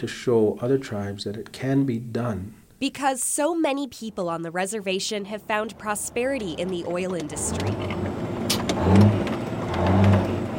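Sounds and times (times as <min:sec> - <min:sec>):
speech: 0:00.0 - 0:08.1
heavy truck engine revving: 0:05.3 - 0:10.5.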